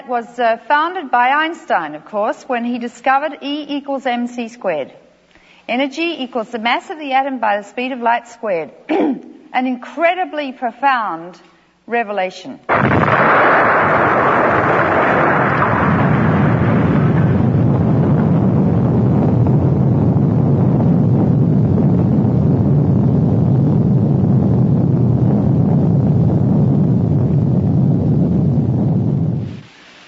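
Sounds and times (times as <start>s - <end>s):
speech: 0.1s - 5.0s, 5.7s - 14.1s
massive explosion: 12.7s - 29.6s.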